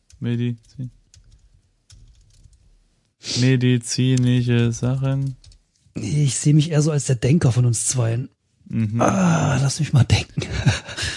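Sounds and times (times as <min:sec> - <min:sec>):
typing on a computer keyboard: 0:00.0 - 0:02.7, 0:05.0 - 0:05.6
speech: 0:00.2 - 0:01.0, 0:03.3 - 0:05.4, 0:06.0 - 0:10.2
laughter: 0:10.4 - 0:11.1.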